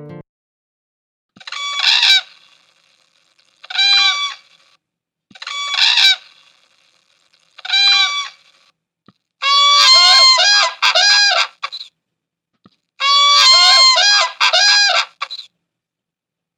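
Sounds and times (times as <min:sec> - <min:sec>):
endangered whooping cranes bugling and honking: 0:01.4 - 0:02.9, 0:03.6 - 0:04.7, 0:05.4 - 0:06.7, 0:07.6 - 0:08.6, 0:09.4 - 0:11.9, 0:13.0 - 0:15.5.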